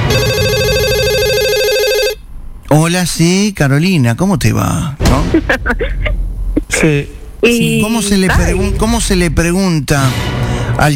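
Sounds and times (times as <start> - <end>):
telephone ringing during a call with steady electronic tones: 0.1 - 2.3
speech: 3.0 - 10.9.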